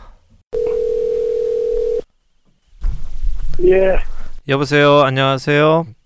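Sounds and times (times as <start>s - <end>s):
steady telephone tone as a call connects: 0.6s - 2.0s
speech: 3.6s - 6.0s.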